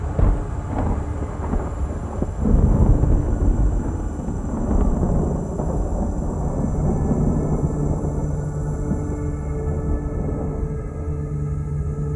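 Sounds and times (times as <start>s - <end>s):
deep rolling thunder: 0.0s - 12.0s
soft hiss of rain: 0.0s - 12.0s.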